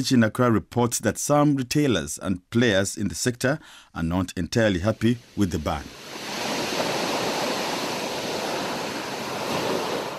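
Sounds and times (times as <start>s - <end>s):
speech: 0.0s - 6.2s
waves breaking on a shore at a fishing harbour: 4.8s - 10.1s
wind buzzing on the microphone: 5.9s - 10.1s.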